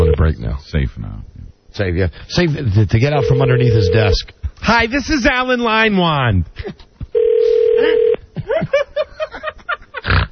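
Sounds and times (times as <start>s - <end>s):
speech: 0.6s - 6.9s
telephone ring tone of unanswered call: 3.1s - 4.2s, 7.2s - 8.2s
person chuckling: 7.8s - 10.2s.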